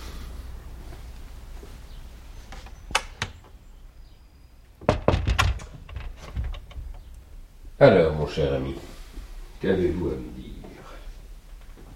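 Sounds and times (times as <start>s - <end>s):
quiet hum: 0.0s - 11.9s
light clicks of a door handle: 2.9s - 3.5s, 4.8s - 7.1s
wooden door closing with thuds and rattles: 4.8s - 7.1s
speech: 7.8s - 8.9s, 9.6s - 10.5s.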